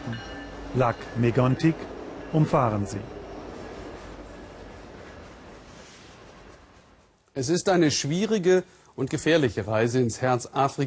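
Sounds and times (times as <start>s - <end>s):
heavy freight train carrying fracked oil rolling along tracks: 0.0s - 8.4s
speech: 0.1s - 3.2s, 7.4s - 10.8s.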